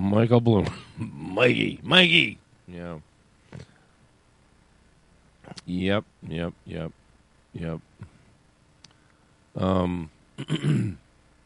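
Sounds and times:
speech: 0:00.1 - 0:03.7, 0:05.6 - 0:07.0, 0:07.6 - 0:08.1, 0:09.6 - 0:11.0
man clearing his throat: 0:10.4 - 0:11.0.

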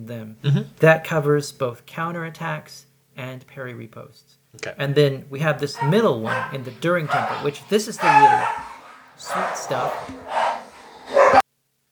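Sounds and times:
speech: 0:00.0 - 0:10.4
dogs barking and snarling in a fight: 0:05.6 - 0:11.4.

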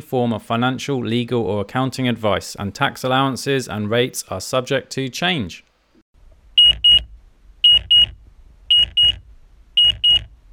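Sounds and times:
speech: 0:00.0 - 0:05.7
hospital pager style electronic beeps: 0:06.6 - 0:08.1, 0:08.7 - 0:09.2, 0:09.8 - 0:10.3.

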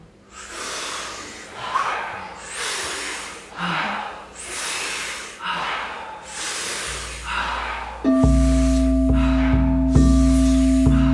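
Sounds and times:
powerful rhythmic breathing through the mouth: 0:00.0 - 0:11.1.

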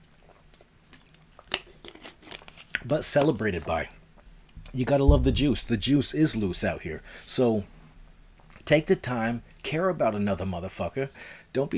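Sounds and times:
plastic water bottle crinkling and crackling: 0:01.4 - 0:02.9
speech: 0:02.8 - 0:04.0, 0:04.7 - 0:07.8, 0:08.7 - 0:11.7.

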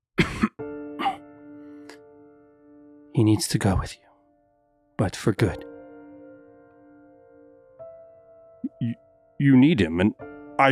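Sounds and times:
woman coughing: 0:00.2 - 0:01.2
speech: 0:03.2 - 0:04.0, 0:05.0 - 0:05.7, 0:08.8 - 0:10.6.

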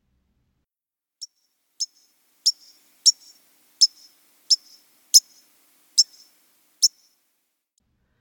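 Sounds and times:
white-crowned sparrow pink call notes: 0:01.8 - 0:07.1.

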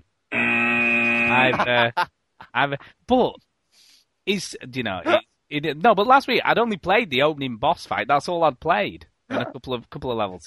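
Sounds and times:
loud flat harsh buzzer tone: 0:00.3 - 0:01.6
laughter: 0:01.3 - 0:02.8, 0:04.5 - 0:05.2, 0:09.3 - 0:09.6
speech: 0:01.4 - 0:10.4.

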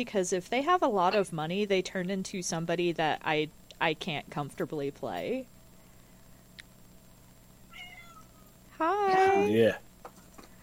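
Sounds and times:
speech: 0:00.0 - 0:05.6, 0:08.8 - 0:09.9
low steady hum: 0:00.0 - 0:10.6
cat meowing: 0:07.7 - 0:08.5.

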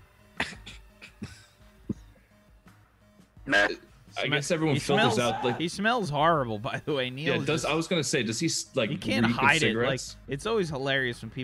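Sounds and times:
person coughing harshly: 0:00.4 - 0:01.5
speech: 0:03.5 - 0:11.4
laughter: 0:04.6 - 0:05.6.

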